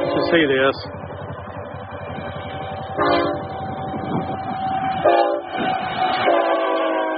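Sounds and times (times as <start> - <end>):
freight train horn blaring at a railroad crossing: 0.0 - 0.6, 2.8 - 3.7, 4.9 - 7.1
freight train roaring and rattling through a passive railroad crossing: 0.0 - 7.1
speech: 0.2 - 1.0.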